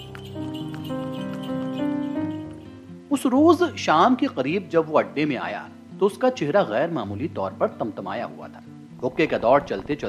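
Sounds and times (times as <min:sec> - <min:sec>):
horse hooves clip-clopping pulling a tonga cart along Mall Road: 0:00.0 - 0:02.8
speech: 0:03.2 - 0:10.0.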